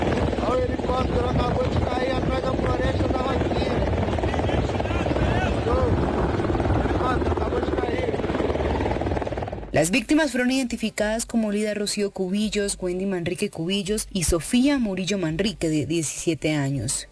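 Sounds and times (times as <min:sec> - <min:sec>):
helicopter rotor: 0:00.0 - 0:10.4
indistinct voices talking: 0:00.1 - 0:09.4
speech: 0:09.8 - 0:17.1.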